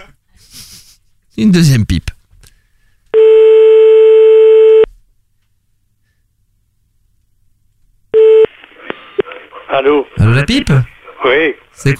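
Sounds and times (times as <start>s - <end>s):
speech: 1.4s - 2.1s, 9.8s - 11.9s
telephone unassigned-number tone: 3.2s - 4.9s, 8.2s - 8.5s.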